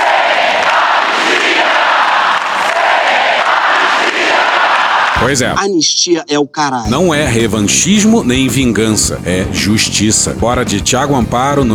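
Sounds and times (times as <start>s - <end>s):
huge crowd chanting a political slogan in Brasília: 0.0s - 5.2s
speech: 5.2s - 11.7s.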